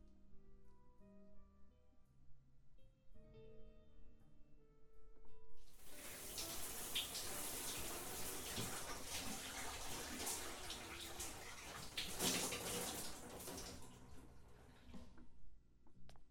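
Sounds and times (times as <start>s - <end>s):
water running to fill a bath: 5.7s - 15.1s.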